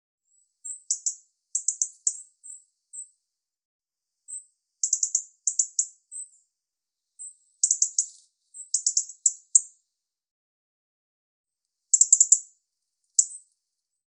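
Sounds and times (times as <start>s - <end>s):
European robin singing very high thin phrases: 0.6s - 3.1s, 4.3s - 6.4s, 7.2s - 9.7s, 12.0s - 12.5s.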